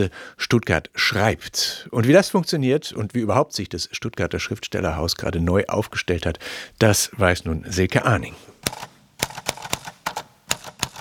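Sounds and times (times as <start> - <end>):
speech: 0.0 - 8.5
typewriter keys struck during an art-academy performance: 8.6 - 10.9.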